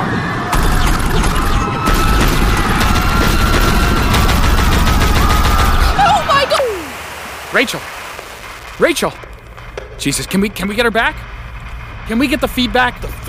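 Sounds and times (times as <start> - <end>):
glowing eye-shaped weapon firing rapid sharp cracks: 0.5 - 6.4, 7.0 - 9.8
speech: 7.6 - 8.0, 8.8 - 9.3, 10.0 - 11.3, 12.1 - 13.2.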